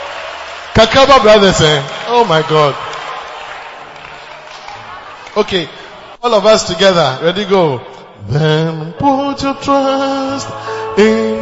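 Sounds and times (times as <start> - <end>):
group of sisters clapping during hymn singing: 0.0 - 6.1
speech: 0.8 - 2.8, 5.4 - 11.4.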